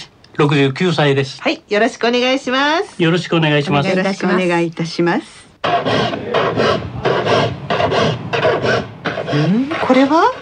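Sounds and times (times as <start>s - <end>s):
speech: 0.4s - 6.9s, 7.9s - 10.3s
file rasping across saw teeth sharpening a saw in Miki: 5.6s - 10.3s.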